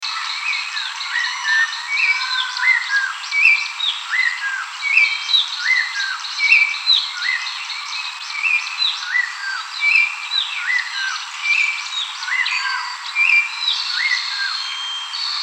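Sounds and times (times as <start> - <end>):
red-tailed palm thrush singing in Mbandaka: 0.0 - 15.4.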